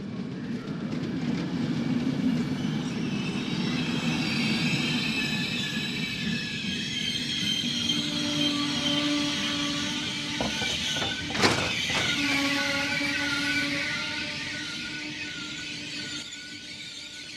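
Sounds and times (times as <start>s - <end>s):
train rolling along the rails: 0.0s - 17.3s
high metallic train wheel squeal: 2.7s - 17.3s
faint clattering of train: 10.4s - 12.3s.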